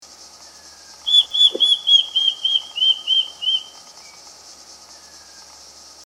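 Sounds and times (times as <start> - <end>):
Lophoictinia isura square-tailed kite calling: 1.1 - 3.7.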